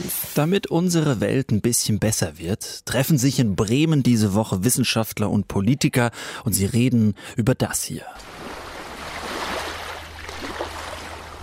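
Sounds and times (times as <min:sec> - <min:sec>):
speech: 0:00.4 - 0:08.4
ocean waves washing with hiss over low rumble: 0:08.2 - 0:11.4.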